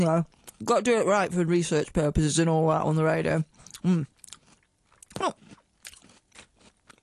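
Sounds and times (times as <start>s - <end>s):
speech: 0.0s - 4.1s, 5.2s - 5.4s
biting and chewing a crunchy biscuit: 3.6s - 7.0s.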